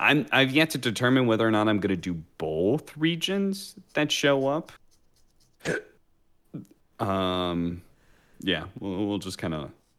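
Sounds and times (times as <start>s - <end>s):
speech: 0.0s - 4.8s, 5.6s - 5.9s, 6.5s - 9.8s
person hiccuping close to the microphone: 5.6s - 6.0s.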